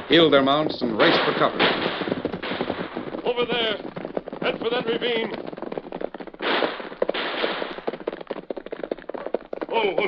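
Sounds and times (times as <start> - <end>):
gunfire in a gunfight, radio drama sound effect: 0.0 - 8.2
speech: 0.1 - 2.1, 3.3 - 5.5, 9.8 - 10.0.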